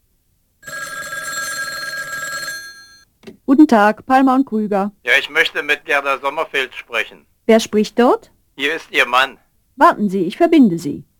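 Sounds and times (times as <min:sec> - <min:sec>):
electronic telephone ring tone while a call is connected at a company switchboard: 0:00.6 - 0:03.1
speech: 0:03.5 - 0:11.1.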